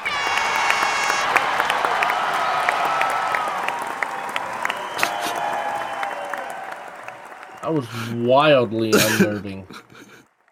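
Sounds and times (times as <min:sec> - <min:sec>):
whoops and cheers: 0:00.0 - 0:07.8
crowd applauding: 0:00.0 - 0:10.5
laughter: 0:07.6 - 0:10.2
speech: 0:07.7 - 0:09.9.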